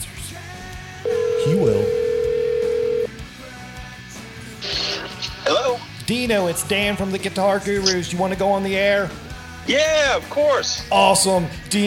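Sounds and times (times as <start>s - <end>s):
steady telephone tone: 1.1s - 3.1s
speech: 6.1s - 11.8s.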